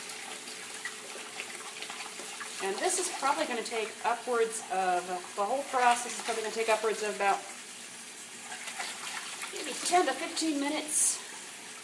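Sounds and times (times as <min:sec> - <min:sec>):
water running as a filter is rinsed: 0:00.0 - 0:11.8
speech: 0:02.6 - 0:07.6, 0:09.9 - 0:11.2.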